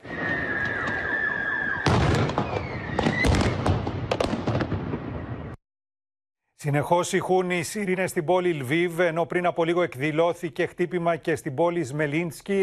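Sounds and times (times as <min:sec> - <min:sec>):
high whistling tone: 0:00.0 - 0:03.3
explosive bangs during a street demonstration in Enerhodar, Ukraine: 0:00.0 - 0:05.6
speech: 0:06.6 - 0:12.6.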